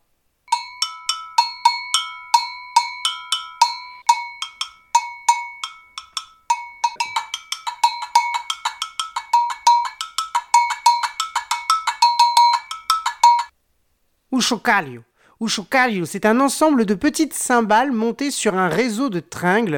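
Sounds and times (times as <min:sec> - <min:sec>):
metal agogo bells struck with a wooden stick: 0:00.5 - 0:13.5
speech: 0:14.4 - 0:19.7.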